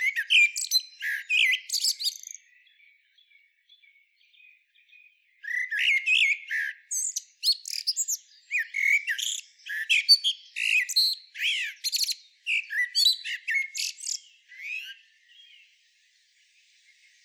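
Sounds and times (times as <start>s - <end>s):
common blackbird Turdus merula twittering: 0.0s - 3.4s, 5.4s - 15.7s.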